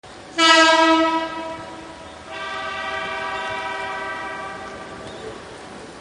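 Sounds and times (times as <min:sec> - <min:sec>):
air horn: 0:00.4 - 0:05.1.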